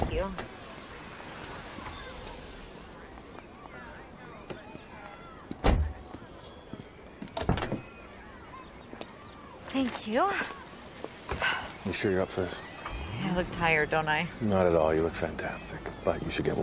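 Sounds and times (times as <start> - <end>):
speech: 0.2 - 0.6, 9.8 - 10.6, 11.8 - 16.6
door opening and shutting: 7.3 - 8.0.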